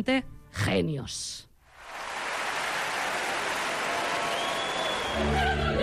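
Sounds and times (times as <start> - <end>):
speech: 0.0 - 1.5, 5.2 - 5.7
audience applause: 1.7 - 5.5.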